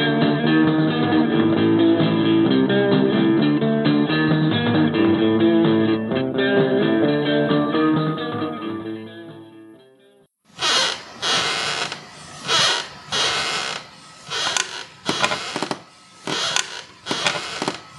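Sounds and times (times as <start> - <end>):
music: 0.0 - 10.3
old wooden rocking chair creaking: 10.5 - 17.9.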